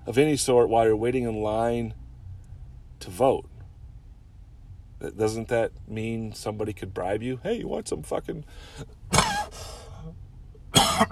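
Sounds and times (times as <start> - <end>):
speech: 0.1 - 2.0, 3.0 - 3.5, 5.0 - 9.3
raspy trailing exhale: 8.5 - 8.9, 9.5 - 10.1
harsh broadband coughs: 9.1 - 9.6, 10.7 - 11.1.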